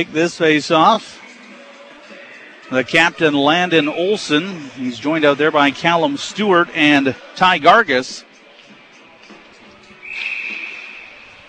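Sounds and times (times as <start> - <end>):
speech: 0.0 - 1.2, 2.7 - 8.3
referee's whistle blast stopping hockey face-off: 10.0 - 11.4.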